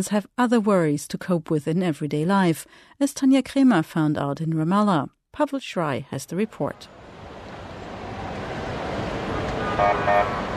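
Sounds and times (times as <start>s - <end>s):
speech: 0.0s - 7.0s, 9.8s - 10.5s
backed-up traffic idling engines on a city square: 6.8s - 10.5s
car horn honks: 9.3s - 10.5s.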